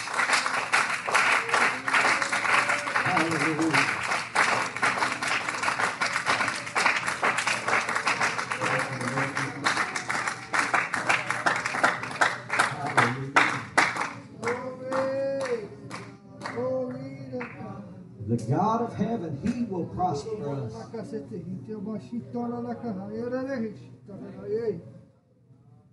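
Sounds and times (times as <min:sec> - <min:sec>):
church audience clapping while praising God: 0:00.0 - 0:17.6
speech: 0:03.3 - 0:04.0, 0:18.5 - 0:24.8.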